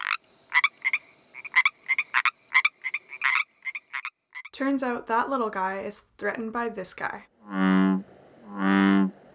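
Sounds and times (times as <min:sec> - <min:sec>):
American bullfrog giving deep resonant calls: 0:00.0 - 0:04.5, 0:07.5 - 0:09.1
Pacific tree frog croaking: 0:00.0 - 0:04.5, 0:07.4 - 0:09.1
speech: 0:04.6 - 0:07.8.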